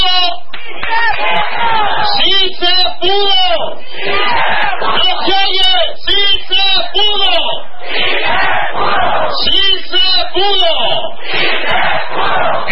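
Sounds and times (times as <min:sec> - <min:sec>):
marchers clapping: 0:00.4 - 0:02.1
crowd of marchers at a street march shouting a rhythmic chant in unison: 0:00.7 - 0:02.6, 0:03.2 - 0:09.7, 0:10.5 - 0:12.7.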